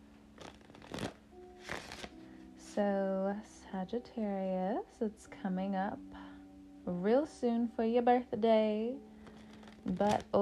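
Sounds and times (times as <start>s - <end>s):
tarot cards being shuffled: 0.4s - 2.2s, 9.2s - 10.4s
speech: 2.8s - 6.2s, 6.8s - 9.1s, 9.8s - 10.4s.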